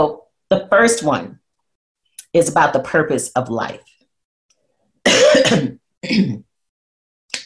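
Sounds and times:
speech: 0.0 - 1.4, 2.3 - 3.9, 5.0 - 6.4
cough: 5.0 - 6.5.

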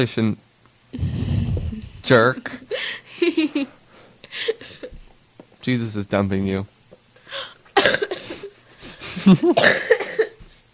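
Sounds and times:
speech: 0.0 - 1.1, 2.0 - 3.8, 5.6 - 7.5, 9.2 - 9.9
harsh coughing: 7.8 - 8.5, 9.1 - 10.4.

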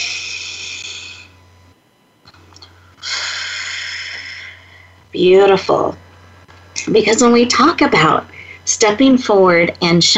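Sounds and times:
deep breath drawn and released: 0.0 - 1.4, 2.6 - 5.0
low steady hum: 0.0 - 10.1
speech: 5.2 - 6.0, 6.8 - 10.1.

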